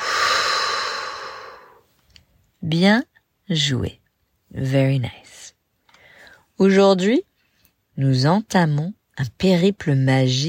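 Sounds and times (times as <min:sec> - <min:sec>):
long breathy exhale in a guided breathing exercise: 0:00.0 - 0:01.8
speech: 0:02.6 - 0:05.5, 0:06.6 - 0:07.3, 0:08.0 - 0:10.4.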